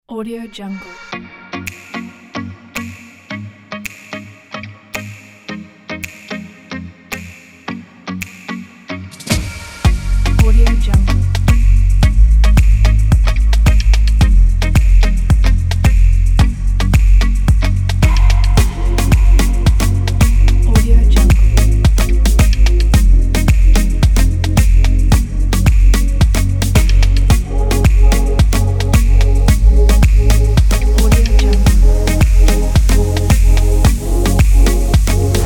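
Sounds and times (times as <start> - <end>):
pop music: 8.2 - 35.4.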